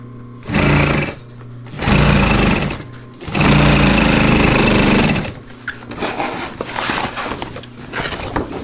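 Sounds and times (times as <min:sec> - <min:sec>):
old industrial sewing machine stitching sail seams: 0:00.4 - 0:05.4.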